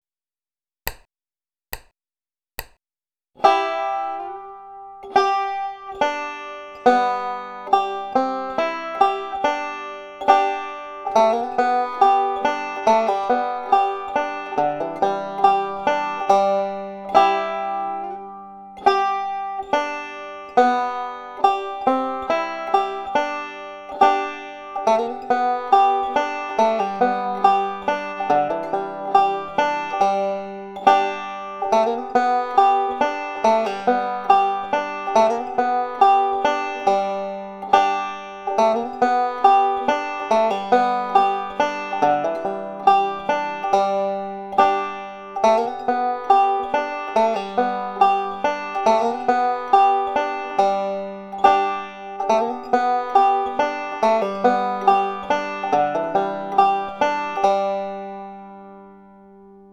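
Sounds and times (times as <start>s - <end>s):
folk tune played with hammer-ons, pull-offs and slides: 3.4s - 59.6s.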